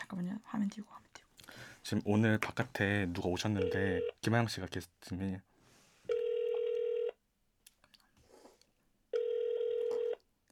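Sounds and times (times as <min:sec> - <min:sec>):
speech: 0:00.1 - 0:01.2, 0:01.8 - 0:05.5
telephone call ringback tone to an unanswered number: 0:06.1 - 0:07.2, 0:09.1 - 0:10.2.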